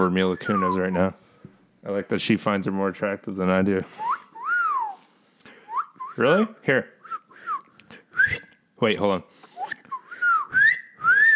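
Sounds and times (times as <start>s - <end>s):
person whistling a short wavering tune: 0.0s - 1.0s, 3.9s - 5.0s, 5.7s - 6.2s, 7.0s - 8.5s, 9.6s - 11.3s
speech: 0.0s - 1.2s, 1.8s - 4.1s, 6.2s - 7.0s, 8.2s - 9.4s.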